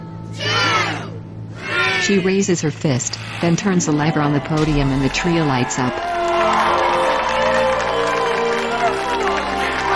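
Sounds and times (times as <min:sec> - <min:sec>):
crowd cheering at a Christmas tree lighting: 0:00.4 - 0:02.3, 0:04.6 - 0:09.9
speech: 0:02.1 - 0:06.0
scattered hand claps: 0:05.9 - 0:09.9.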